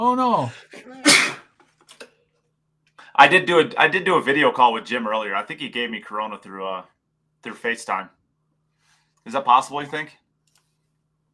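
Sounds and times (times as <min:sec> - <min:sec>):
speech: 0:00.0 - 0:01.2, 0:03.2 - 0:08.2, 0:09.2 - 0:10.2
person sneezing: 0:00.7 - 0:01.6.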